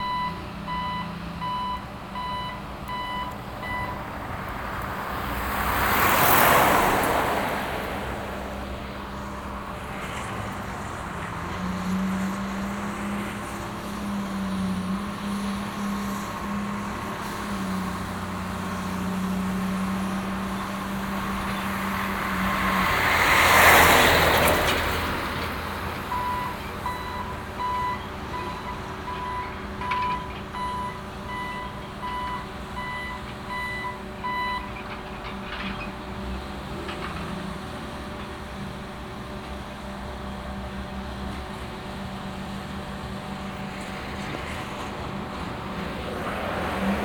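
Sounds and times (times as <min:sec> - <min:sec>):
dock traffic in Belfast: 0:00.0 - 0:47.0.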